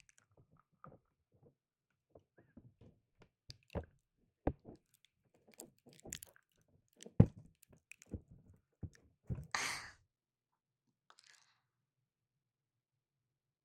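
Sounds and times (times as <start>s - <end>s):
teeth gnawing and rubbing against the rim of an ear: 4.8s - 8.2s
breathy hiss: 9.6s - 10.0s.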